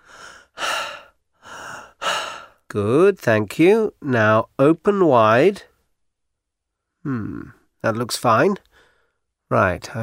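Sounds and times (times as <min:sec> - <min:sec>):
patient breathing in and out during a medical examination: 0:00.0 - 0:02.7, 0:08.7 - 0:09.3
speech: 0:02.7 - 0:05.7, 0:07.0 - 0:08.7, 0:09.5 - 0:10.0.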